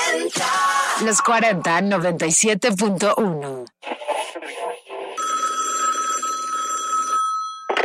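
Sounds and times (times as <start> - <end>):
speech: 0.2 - 3.8
telephone trilling ring for an incoming call: 5.2 - 7.8.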